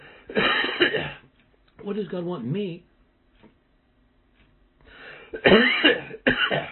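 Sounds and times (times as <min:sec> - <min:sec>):
preacher coughing during a church sermon: 0:00.3 - 0:01.2, 0:05.3 - 0:06.7
speech: 0:01.8 - 0:02.9, 0:05.3 - 0:06.7.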